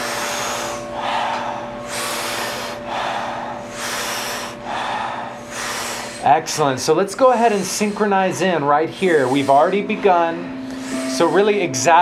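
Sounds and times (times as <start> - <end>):
continuous low hum: 0.0 - 6.2, 6.8 - 11.9
rhythmic deep belly breathing exercise: 0.0 - 11.9
speech: 6.2 - 10.6, 11.2 - 11.9.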